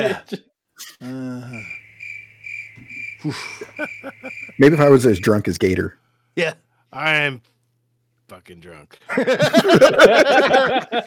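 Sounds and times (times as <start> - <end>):
laughter: 0.0 - 0.5, 3.2 - 4.8, 9.0 - 11.0
speech: 0.0 - 1.8, 3.2 - 7.5, 8.3 - 11.0
cricket chirping sound effect: 1.3 - 5.9.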